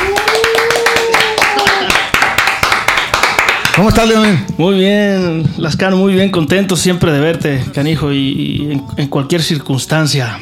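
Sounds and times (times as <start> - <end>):
audience applauding to welcome a guest onto an interview show: 0.0 - 4.4
speech: 3.8 - 10.4.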